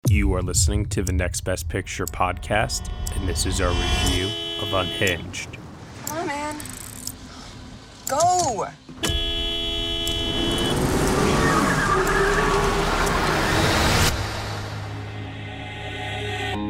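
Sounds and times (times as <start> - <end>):
speech: 0.2 - 6.4, 8.1 - 9.1
road traffic: 2.0 - 16.6
car horn honking: 2.9 - 5.6, 9.0 - 11.4.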